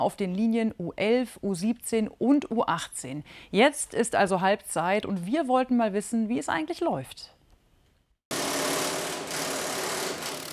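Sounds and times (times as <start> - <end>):
speech: 0.0 - 7.4
mechanical drilling in construction work on tram tracks: 8.3 - 10.5.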